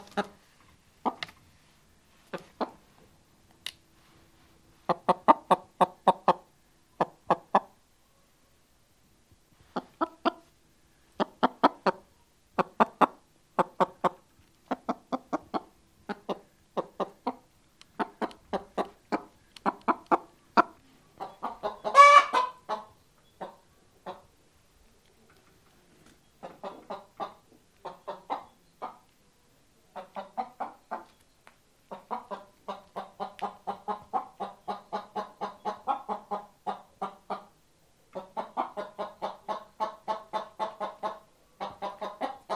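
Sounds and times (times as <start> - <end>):
chicken clucking: 0.0 - 1.4, 2.2 - 3.0, 4.8 - 8.3, 9.6 - 10.6, 11.2 - 42.5.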